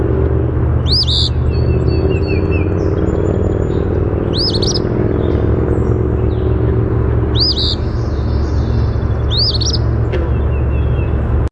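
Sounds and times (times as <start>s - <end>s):
steady low rumbling noise: 0.0s - 11.4s
Eastern phoebe singing: 0.8s - 2.7s, 3.8s - 5.2s, 7.3s - 9.9s.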